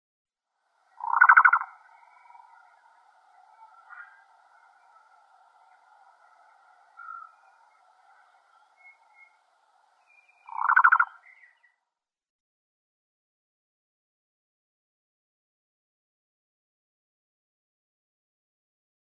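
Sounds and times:
Black-billed Cuckoo calling: 1.0 - 9.4, 10.0 - 11.7.

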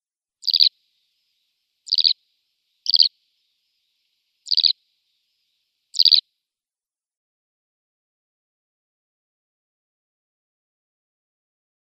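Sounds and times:
Eurasian Skylark flight calls: 0.4 - 0.7, 1.9 - 2.2, 2.9 - 3.1, 4.5 - 4.8, 6.0 - 6.2.

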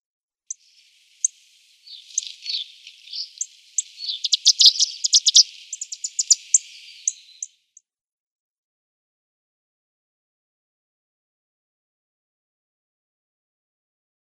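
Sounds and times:
Little Bunting calls: 0.5 - 7.5.

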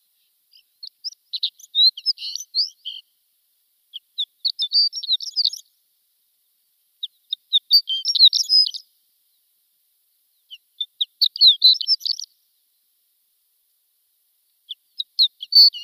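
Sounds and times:
shore lark singing: 0.5 - 3.1, 3.9 - 5.7, 7.0 - 8.9, 10.3 - 12.4, 14.6 - 15.8.

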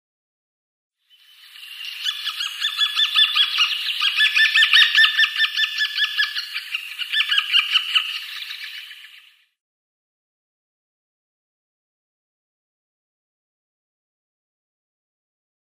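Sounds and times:
White-backed Woodpecker nestlings: 1.6 - 9.2.

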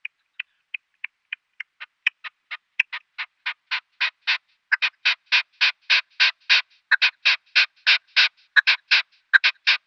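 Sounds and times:
male Red-legged partridge display call: 0.0 - 9.8.

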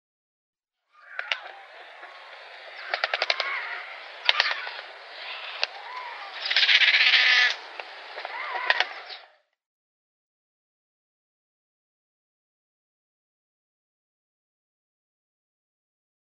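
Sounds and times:
Yellow-billed Stork bill clattering: 1.0 - 9.2.

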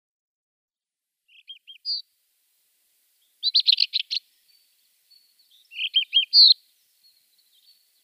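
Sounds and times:
rufous-tailed scrub robin singing: 1.3 - 2.1, 3.2 - 8.0.

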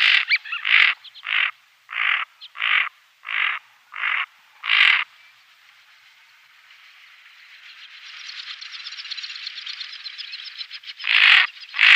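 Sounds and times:
female Greater scaup uttering rasping growled notes: 0.0 - 5.0.

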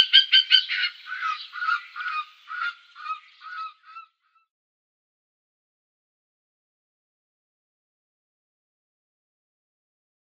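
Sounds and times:
spotted eagle yelping harmonic calls: 0.0 - 4.1.

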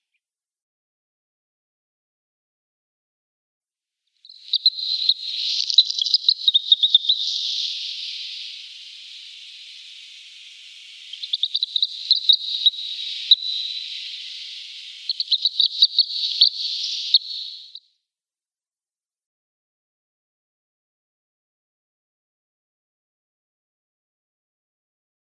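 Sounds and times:
Little Stint calls: 4.3 - 17.8.

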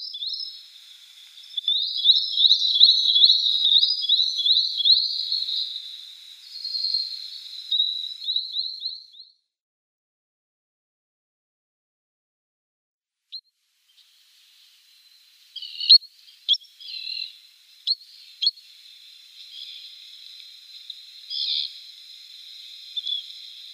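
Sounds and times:
faint steady high hiss: 0.0 - 8.6, 13.4 - 23.7
spotted sandpiper calls: 1.4 - 8.9, 15.6 - 23.7.

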